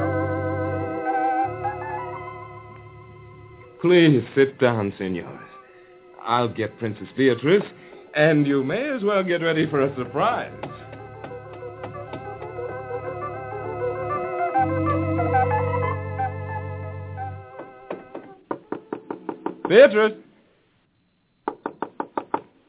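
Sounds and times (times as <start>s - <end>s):
sustained tonal music: 0.0s - 18.4s
speech: 3.8s - 5.5s, 6.2s - 10.8s, 19.7s - 20.2s
knocking on a wooden door: 10.6s - 12.5s, 17.6s - 19.8s, 21.5s - 22.5s.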